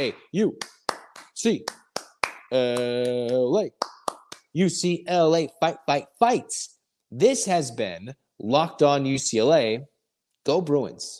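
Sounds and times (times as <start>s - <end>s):
speech: 0.0s - 0.8s, 1.4s - 1.8s, 2.5s - 3.8s, 4.5s - 11.1s
sharp rhythmic hand claps: 0.0s - 4.6s.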